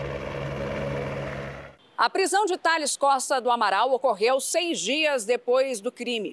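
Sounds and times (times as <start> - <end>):
helicopter engine and rotor droning overhead: 0.0 - 1.8
speech: 2.0 - 6.3.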